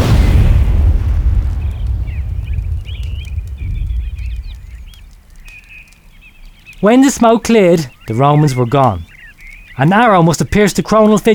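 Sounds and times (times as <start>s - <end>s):
loud explosion with heavy low rumble: 0.0s - 5.4s
birds chirping faintly: 0.0s - 11.3s
speech: 6.8s - 9.1s, 9.8s - 11.3s.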